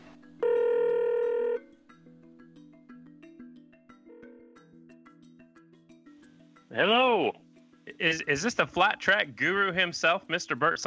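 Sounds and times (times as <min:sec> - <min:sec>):
telephone call ring tone: 0:00.4 - 0:01.7, 0:04.0 - 0:04.8
speech: 0:06.8 - 0:07.4, 0:08.0 - 0:10.8.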